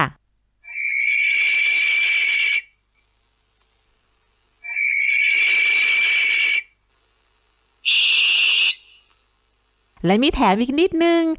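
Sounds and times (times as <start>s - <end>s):
barn owl from Thailand screeching: 0.6s - 2.7s, 4.6s - 6.7s, 7.9s - 9.1s
speech: 10.0s - 11.3s.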